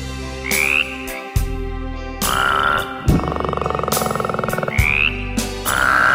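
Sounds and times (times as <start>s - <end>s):
steady musical backing: 0.0s - 6.1s
frogs croaking: 0.4s - 1.3s, 2.2s - 6.1s.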